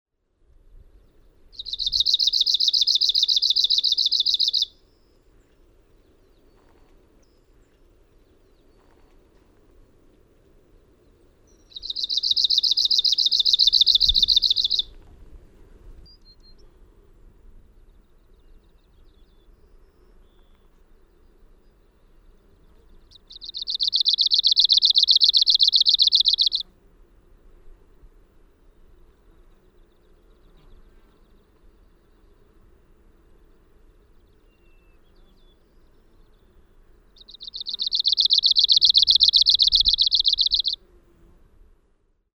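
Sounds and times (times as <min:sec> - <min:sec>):
Arctic warbler singing: 0:01.6 - 0:04.7, 0:11.5 - 0:14.9, 0:23.1 - 0:26.6, 0:37.2 - 0:40.8.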